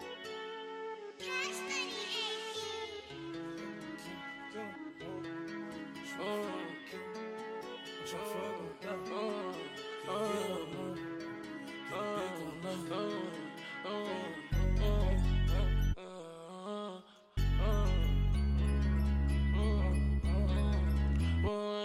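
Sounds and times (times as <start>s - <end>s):
trap music track: 1.2s - 16.0s, 17.4s - 21.7s
tinkling bell-like melody: 13.5s - 16.0s, 17.4s - 21.6s.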